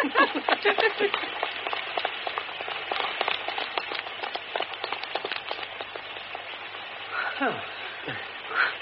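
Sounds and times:
running footsteps splashing in a stage door alley: 0:00.0 - 0:06.2
heavy rain in a stage door alley: 0:00.0 - 0:08.8.

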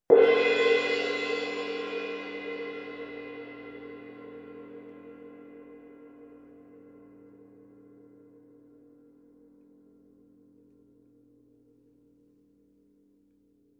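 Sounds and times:
Sabian 18 inch AA Molto Symphonic suspended cymbal: 0:00.1 - 0:10.5.

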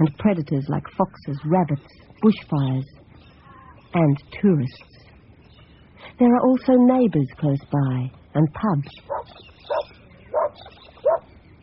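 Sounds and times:
speech: 0:00.0 - 0:03.0, 0:03.9 - 0:05.0, 0:06.2 - 0:09.9
dog barking: 0:09.1 - 0:11.3.

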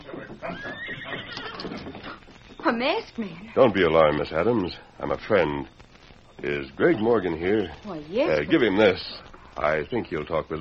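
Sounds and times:
horse whinnying: 0:00.0 - 0:02.2
hoof movement: 0:00.0 - 0:02.7
speech: 0:02.6 - 0:05.8, 0:06.4 - 0:10.5.

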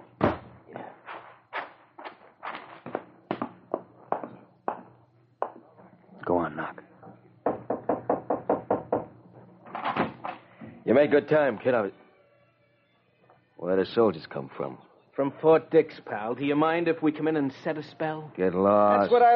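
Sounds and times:
low hum: 0:00.0 - 0:19.3
knocking on a door: 0:03.3 - 0:05.6, 0:07.4 - 0:09.2
speech: 0:10.9 - 0:12.0, 0:13.7 - 0:19.3.

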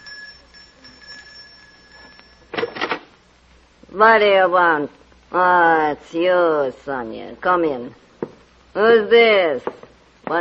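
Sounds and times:
electric doorbell at an upstairs door ringing: 0:00.0 - 0:02.6
faint steady whine: 0:00.0 - 0:10.3
speech: 0:03.9 - 0:08.0, 0:08.8 - 0:10.3.

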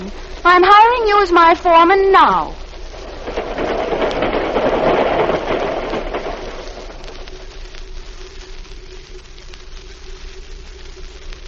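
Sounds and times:
train rumbling as it pulls into a station: 0:00.0 - 0:07.8
speech: 0:00.4 - 0:02.6.

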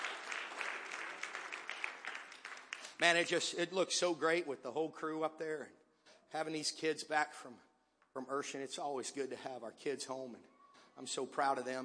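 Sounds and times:
audience applauding: 0:00.0 - 0:03.4
speech: 0:03.0 - 0:11.8.

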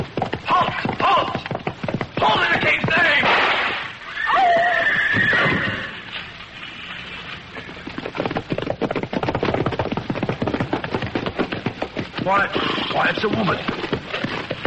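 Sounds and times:
galloping horse hooves drumming: 0:00.0 - 0:14.6
horse whinnying shrilly: 0:04.0 - 0:06.2, 0:12.3 - 0:14.3
speech: 0:12.3 - 0:13.9.

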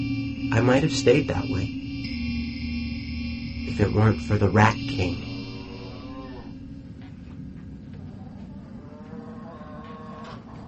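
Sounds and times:
constant low mechanical rumble: 0:00.0 - 0:08.9
speech: 0:00.5 - 0:01.8, 0:03.8 - 0:05.3
cows mooing in long drawn-out calls: 0:05.5 - 0:06.6, 0:08.9 - 0:10.6.

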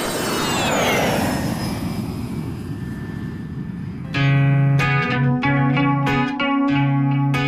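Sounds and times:
airplane engine roaring past: 0:00.0 - 0:07.3.

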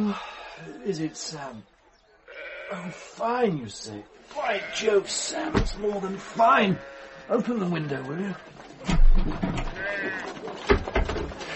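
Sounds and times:
speech: 0:00.0 - 0:01.7, 0:02.7 - 0:10.8
sheep bleating: 0:02.3 - 0:03.2, 0:04.3 - 0:05.5, 0:06.3 - 0:08.5, 0:09.7 - 0:10.4.

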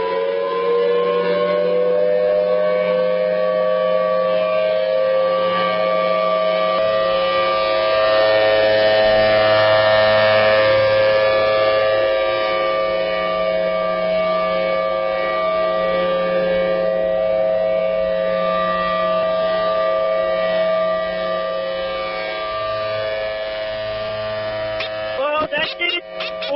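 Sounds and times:
civil defense siren wailing: 0:00.0 - 0:26.5
low droning hum: 0:22.4 - 0:26.5.

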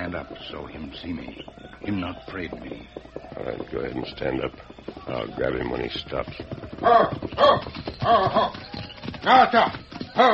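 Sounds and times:
horse hooves clip-clopping: 0:00.0 - 0:10.3
speech: 0:00.2 - 0:10.3.

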